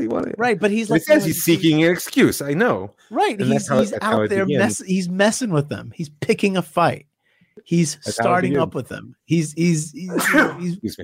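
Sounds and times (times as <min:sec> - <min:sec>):
speech: 0:00.1 - 0:11.0
person sneezing: 0:10.1 - 0:10.8.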